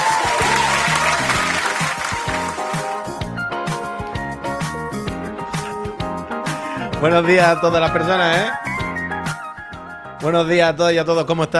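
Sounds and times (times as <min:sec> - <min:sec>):
man clapping applauding himself: 0:00.0 - 0:04.9, 0:05.5 - 0:07.6
upbeat music track with a steady punchy beat: 0:00.0 - 0:10.5
speech: 0:07.0 - 0:08.7, 0:10.2 - 0:11.5.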